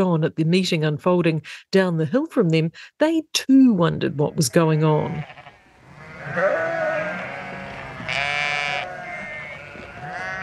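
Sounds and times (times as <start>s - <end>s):
speech: 0.0s - 5.4s, 6.3s - 6.8s
flock of sheep bleating: 4.1s - 10.4s.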